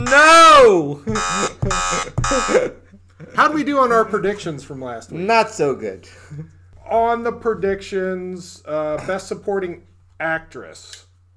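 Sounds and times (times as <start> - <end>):
harsh loud electronic buzzer: 0.0 - 2.8
speech: 0.1 - 2.8, 3.4 - 11.0.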